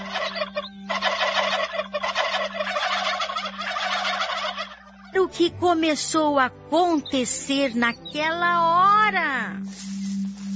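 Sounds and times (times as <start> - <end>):
flock of turkeys gobbling: 0.0 - 5.2
speech: 5.2 - 9.9.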